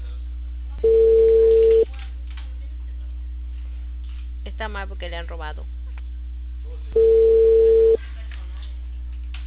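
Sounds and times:
faint low electrical hum: 0.0 - 9.4
telephone network busy tone from the Claro carrier: 0.8 - 1.8, 7.0 - 8.0
speech: 4.7 - 5.8.

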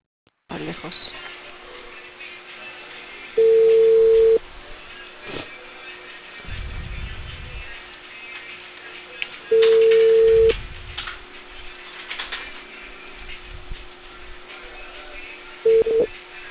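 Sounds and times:
speech: 0.6 - 1.2
telephone line ringback tone: 3.4 - 4.4, 9.5 - 10.5, 15.7 - 16.1.

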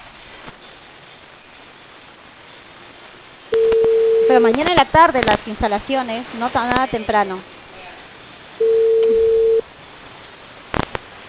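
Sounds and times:
faint telephone line hiss: 0.0 - 11.2
telephone ringback tone while a call is being placed: 3.5 - 4.5, 8.6 - 9.6
speech: 4.3 - 7.5.

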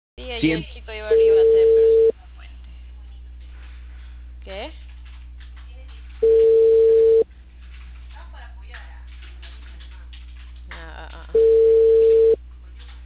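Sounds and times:
speech: 0.3 - 1.2
ringback tone on an unanswered outgoing telephone call: 1.1 - 2.1, 6.2 - 7.2, 11.4 - 12.4.

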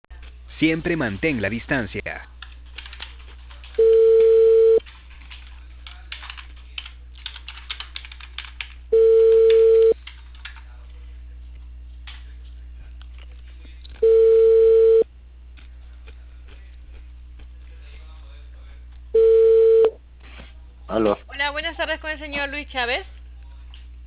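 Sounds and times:
speech: 0.6 - 2.3, 22.5 - 23.1
telephone ringback tone on a call to a cable company: 3.8 - 4.8, 8.9 - 10.0, 14.0 - 15.0, 19.2 - 19.9.

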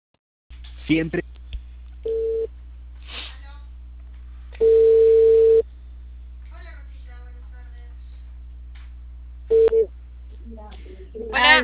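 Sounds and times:
speech: 0.9 - 1.3
telephone line tone on an outgoing call to a cable TV provider: 2.1 - 2.5, 4.6 - 5.6, 9.5 - 9.9.

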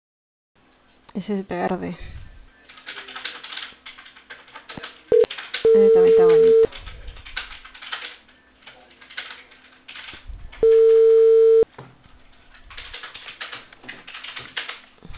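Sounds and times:
speech: 1.2 - 2.1
steady telephone line tone while placing a call: 5.1 - 6.7, 10.6 - 11.6.

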